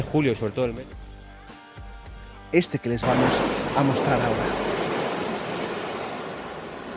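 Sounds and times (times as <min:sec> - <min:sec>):
speech: 0:00.0 - 0:01.0, 0:02.5 - 0:04.6
ocean waves washing in: 0:03.0 - 0:06.9
wind in palm trees: 0:03.0 - 0:06.9.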